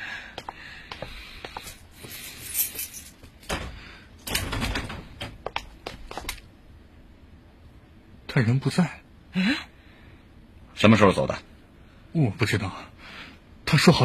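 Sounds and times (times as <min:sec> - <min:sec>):
keys jangling: 0:01.6 - 0:03.5
speech: 0:08.4 - 0:09.7, 0:10.8 - 0:11.5, 0:12.1 - 0:12.9, 0:13.7 - 0:14.0.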